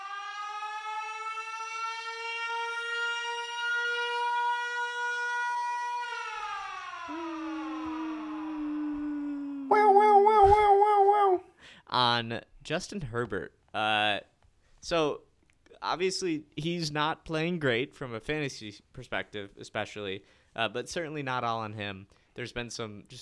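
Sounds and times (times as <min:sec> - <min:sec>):
alarm siren wailing and warbling: 0:00.0 - 0:09.1, 0:09.7 - 0:11.4
speech: 0:11.9 - 0:23.2.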